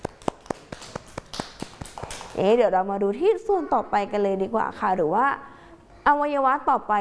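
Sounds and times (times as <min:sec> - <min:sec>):
children clapping hands to applaud a classmate: 0:00.0 - 0:02.4
speech: 0:02.4 - 0:05.5, 0:06.1 - 0:06.9.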